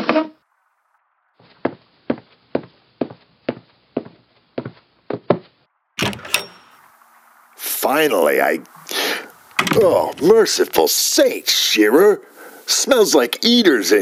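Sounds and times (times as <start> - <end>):
speech: 0.1 - 0.3, 7.9 - 8.7, 9.7 - 13.9
door swinging open with a noisy scrape: 6.0 - 6.8, 9.5 - 10.4
brief rattle: 6.0 - 6.9, 9.5 - 10.4.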